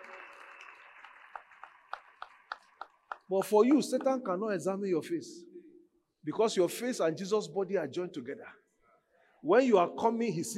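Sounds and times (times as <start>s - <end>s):
audience applause: 0.0s - 3.6s
speech: 3.3s - 5.5s, 6.2s - 8.6s, 9.4s - 10.5s.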